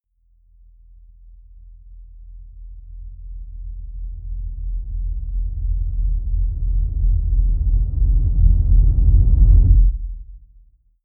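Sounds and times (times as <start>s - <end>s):
deep noise synth sub rumble: 3.2s - 10.5s.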